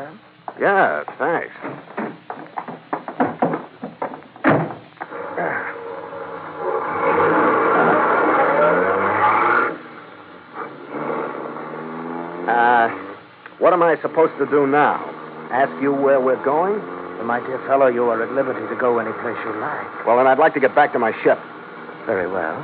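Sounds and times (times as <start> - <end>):
speech: 0.0 - 2.2, 14.0 - 22.6
Rolls-Royce town car engine starting and revving as the car pulls away: 5.1 - 20.8.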